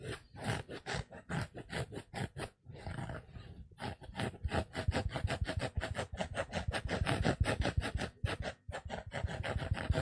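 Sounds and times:
sponge scratched in quick back-and-forth strokes: 0:00.0 - 0:09.9.

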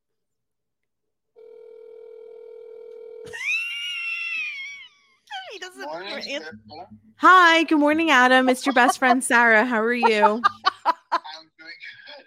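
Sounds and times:
phone line ringback tone: 0:01.4 - 0:03.3
laughter: 0:03.3 - 0:05.2, 0:08.3 - 0:12.2
speech: 0:05.8 - 0:10.7.

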